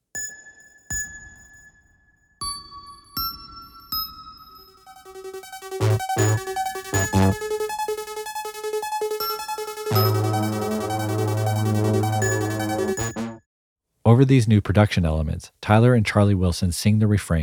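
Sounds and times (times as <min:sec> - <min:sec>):
bright bell-like synth tones: 0:04.8 - 0:13.4
speech: 0:05.1 - 0:07.6, 0:14.1 - 0:17.4
fuzzy synth bass stabs: 0:05.7 - 0:07.6, 0:09.9 - 0:13.3.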